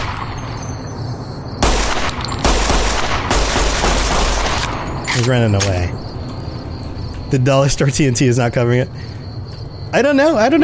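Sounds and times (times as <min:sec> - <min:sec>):
video game gunfire volley: 0:01.6 - 0:04.8
speech: 0:05.2 - 0:06.2, 0:07.3 - 0:09.2, 0:09.9 - 0:10.6.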